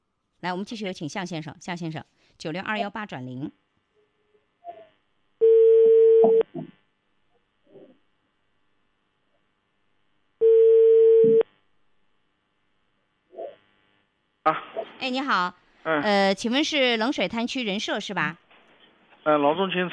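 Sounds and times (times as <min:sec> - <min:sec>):
speech: 0:00.4 - 0:03.6, 0:06.2 - 0:06.4, 0:14.5 - 0:18.4, 0:19.2 - 0:19.9
telephone ringing tone while dialling a call: 0:05.4 - 0:06.4, 0:10.4 - 0:11.4.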